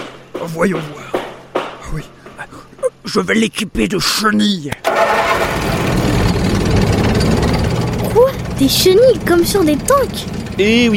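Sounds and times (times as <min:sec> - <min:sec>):
speech: 0:00.4 - 0:01.1, 0:01.9 - 0:05.0, 0:08.2 - 0:10.9
tractor engine starting and idling: 0:04.9 - 0:10.9.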